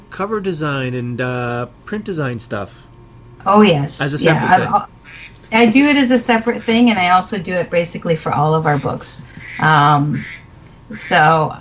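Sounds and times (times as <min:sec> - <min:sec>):
speech: 0:00.2 - 0:11.6
duck quacking: 0:08.7 - 0:11.3.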